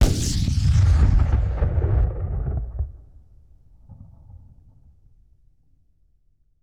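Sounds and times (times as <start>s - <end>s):
cannon blast fired downrange: 0.0s - 4.2s.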